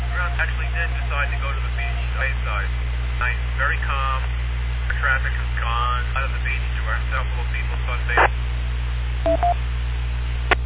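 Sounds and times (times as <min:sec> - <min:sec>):
steady low hum: 0:00.0 - 0:10.6
speech: 0:00.4 - 0:08.5, 0:09.2 - 0:09.8
electronic dual-tone telephone beeps announcing an incoming phone call: 0:09.3 - 0:09.6.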